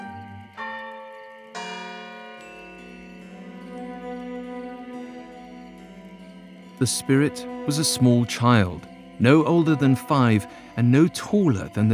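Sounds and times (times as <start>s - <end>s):
large town square bells ringing noon: 0.0s - 11.9s
speech: 6.8s - 11.9s.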